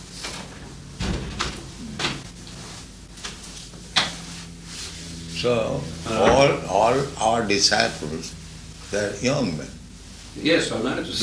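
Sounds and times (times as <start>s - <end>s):
door being closed: 0.2s - 2.2s
speech: 5.4s - 9.8s, 10.4s - 11.2s.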